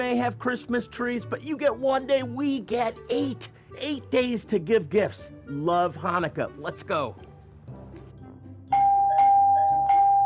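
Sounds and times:
speech: 0:00.1 - 0:07.2
doorbell chiming: 0:08.7 - 0:10.2.

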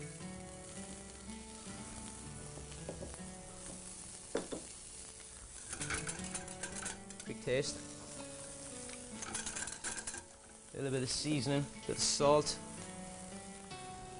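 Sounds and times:
leeks sweating and sizzling in a hot pan: 0:00.0 - 0:14.1
soft stirring knocks in a hot pan: 0:02.5 - 0:04.7, 0:05.7 - 0:07.3, 0:08.9 - 0:10.6
speech: 0:07.4 - 0:07.9, 0:10.8 - 0:12.7.

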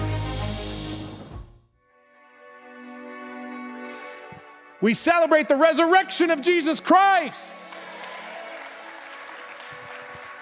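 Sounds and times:
speech: 0:04.8 - 0:07.6
crowd of many hands clapping: 0:06.6 - 0:10.3.

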